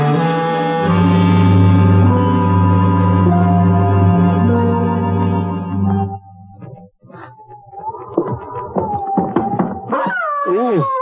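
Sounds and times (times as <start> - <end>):
low sustained droning tone: 0.1 - 9.2
dog whimpering and howling: 7.2 - 10.9.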